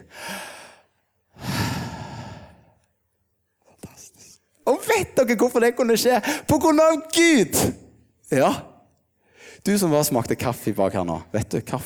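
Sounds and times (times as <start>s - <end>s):
audience breathing in and out in unison during a deep-breathing exercise: 0.0s - 2.8s
speech: 5.0s - 8.7s, 9.6s - 11.8s.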